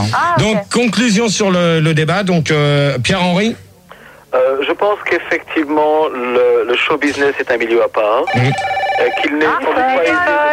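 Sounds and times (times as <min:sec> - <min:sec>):
speech: 0:00.0 - 0:03.6, 0:04.3 - 0:10.5
telephone ringing with electronic tones: 0:08.0 - 0:10.5.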